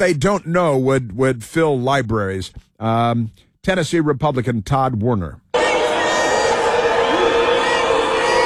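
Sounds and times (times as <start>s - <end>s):
speech: 0.0s - 5.5s
loud dense crowd yelling and shouting: 5.5s - 8.4s.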